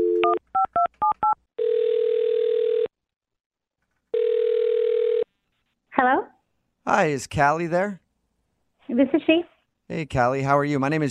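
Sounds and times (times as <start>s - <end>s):
telephone dial tone: 0.0s - 2.9s, 4.1s - 5.3s
telephone ringback tones: 1.6s - 2.9s, 4.2s - 5.2s
speech: 7.0s - 8.0s, 9.0s - 11.1s.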